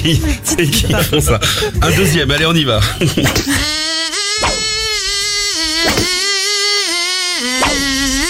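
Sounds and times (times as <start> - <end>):
speech: 0.0 - 4.0
loud continuous mosquito-like buzz: 3.6 - 8.2
brief thumps: 4.4 - 4.9.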